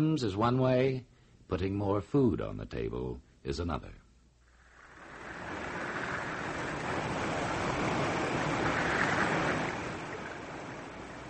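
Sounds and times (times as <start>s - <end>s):
speech: 0.0s - 4.0s
Amazon River water flowing with a continuous rushing roar: 4.6s - 11.2s.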